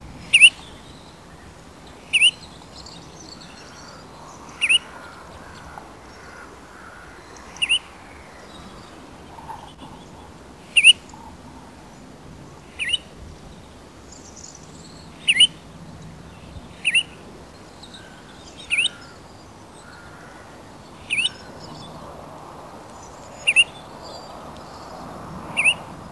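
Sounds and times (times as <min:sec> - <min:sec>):
goldfinch calling: 0:00.3 - 0:01.1, 0:02.0 - 0:07.9, 0:09.3 - 0:11.7, 0:12.7 - 0:13.1, 0:14.2 - 0:15.6, 0:16.8 - 0:20.4, 0:21.0 - 0:21.9, 0:23.0 - 0:24.9, 0:25.5 - 0:25.9.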